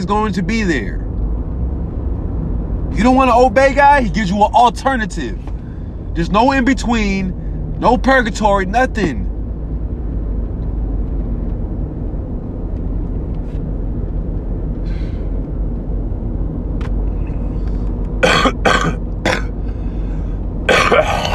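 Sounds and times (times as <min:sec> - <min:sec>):
speech: 0:00.0 - 0:01.1, 0:02.9 - 0:05.5, 0:06.2 - 0:09.2
steady low rumble of noise: 0:00.0 - 0:21.3
sharp coughs: 0:18.2 - 0:19.5, 0:20.7 - 0:21.3.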